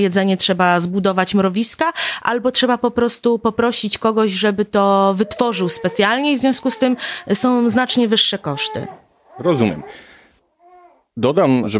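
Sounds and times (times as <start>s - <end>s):
speech: 0.0s - 10.1s, 11.2s - 11.7s
baby babbling softly: 5.0s - 11.1s.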